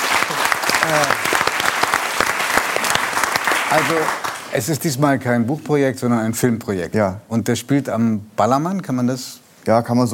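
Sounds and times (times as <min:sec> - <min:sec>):
crowd applauding: 0:00.0 - 0:04.5
speech: 0:00.9 - 0:01.2, 0:03.7 - 0:10.1.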